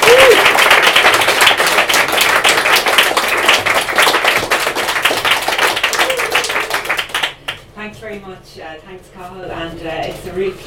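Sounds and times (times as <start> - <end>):
audience applause: 0.0 - 7.6
speech: 8.5 - 10.6.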